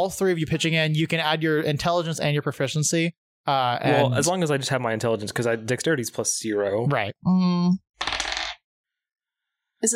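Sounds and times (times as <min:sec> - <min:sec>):
speech: 0:00.0 - 0:08.1, 0:09.8 - 0:09.9
dice tumbling across a hard table: 0:08.0 - 0:08.6.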